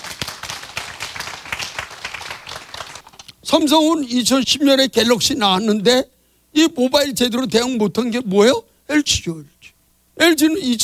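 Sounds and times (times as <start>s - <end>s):
audience clapping: 0.0s - 3.3s
speech: 3.5s - 9.5s, 10.2s - 10.8s.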